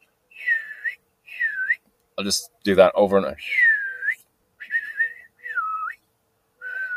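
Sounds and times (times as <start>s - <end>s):
person whistling imitating a blackbird's call: 0.4s - 1.8s, 3.4s - 6.0s, 6.6s - 6.9s
speech: 2.2s - 3.6s.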